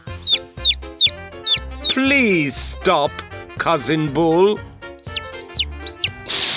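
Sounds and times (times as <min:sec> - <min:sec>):
chicken clucking: 0:00.0 - 0:01.6, 0:05.0 - 0:06.4
speech: 0:02.0 - 0:04.7.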